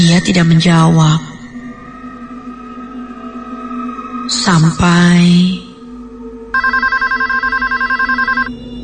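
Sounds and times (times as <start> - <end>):
speech: 0.1 - 1.3, 4.5 - 5.6
home telephone ringing: 6.5 - 8.5.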